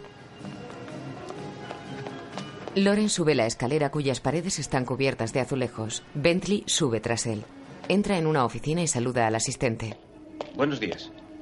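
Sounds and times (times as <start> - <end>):
footsteps running across a hard outdoor courtyard surface: 0.0 - 3.2
speech: 2.8 - 11.2.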